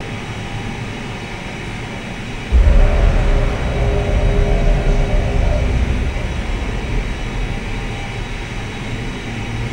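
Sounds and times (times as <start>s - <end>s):
refinery ambience booming: 2.5s - 9.7s.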